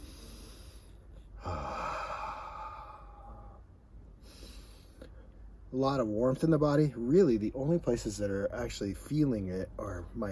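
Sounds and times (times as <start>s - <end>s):
slow deep breath taken to calm oneself: 0.0s - 5.4s
quiet noise: 0.0s - 10.3s
speech: 5.7s - 10.3s.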